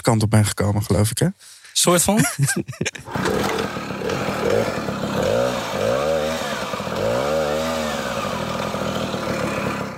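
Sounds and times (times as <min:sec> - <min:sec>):
speech: 0:00.0 - 0:03.5
laughter: 0:02.1 - 0:03.2
small red Tomos two-stroke moped engine revving: 0:03.1 - 0:09.9.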